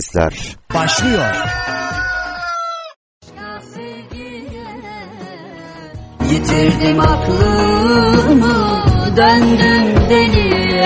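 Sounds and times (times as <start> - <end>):
speech: 0.0 - 2.0, 6.4 - 10.8
rooster crowing: 0.8 - 3.0.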